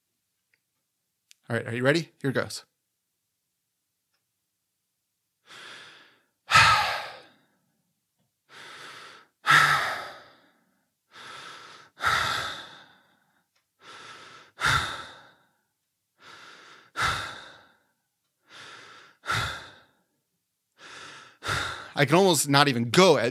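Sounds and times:
speech: 0:01.5 - 0:02.7, 0:22.0 - 0:23.2
rapid breathing at a brisk pace: 0:05.4 - 0:07.5, 0:08.5 - 0:20.1, 0:20.8 - 0:22.3.

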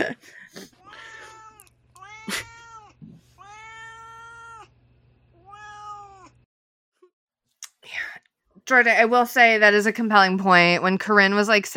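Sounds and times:
speech: 0:00.0 - 0:00.8, 0:08.7 - 0:11.7
cat meowing: 0:00.8 - 0:04.7, 0:05.4 - 0:06.4.

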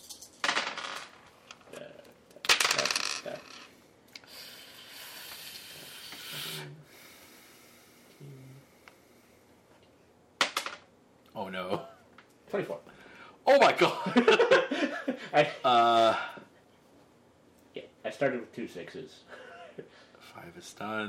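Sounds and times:
four dice rolling on a hard tabletop: 0:00.0 - 0:01.8, 0:02.4 - 0:03.7, 0:10.4 - 0:10.9
speech: 0:12.5 - 0:12.8, 0:13.6 - 0:14.4, 0:15.4 - 0:16.3, 0:18.2 - 0:21.0.

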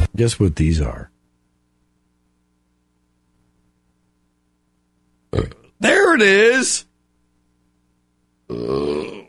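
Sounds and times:
speech: 0:00.2 - 0:01.1, 0:05.3 - 0:06.9, 0:08.5 - 0:09.2
loud deep voiced burp: 0:05.3 - 0:05.7, 0:08.5 - 0:09.2.

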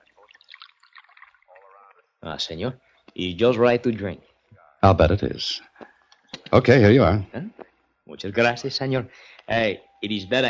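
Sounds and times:
coffee pouring into a cup in a hotel: 0:00.2 - 0:01.6
speech: 0:02.2 - 0:05.7, 0:06.5 - 0:07.6, 0:08.2 - 0:10.4.

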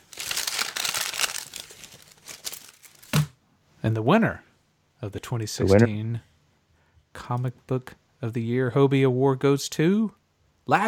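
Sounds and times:
paper envelope being torn open: 0:00.0 - 0:03.2
speech: 0:03.8 - 0:06.3, 0:07.2 - 0:10.8.

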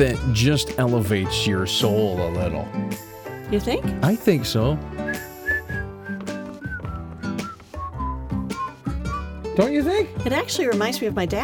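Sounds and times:
speech: 0:00.0 - 0:05.2, 0:09.6 - 0:11.4
bright whistled melody: 0:04.8 - 0:09.9.

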